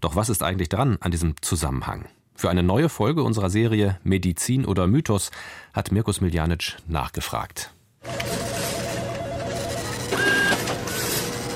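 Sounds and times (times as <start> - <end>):
speech: 0.0 - 8.2
office printer rattling: 8.1 - 11.5.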